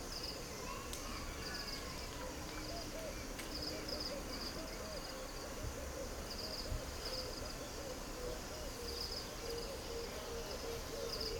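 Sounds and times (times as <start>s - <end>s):
high cricket chirring: 0.0s - 11.3s
owl giving soft low hoots in a field in Putti, Uganda: 4.1s - 11.3s.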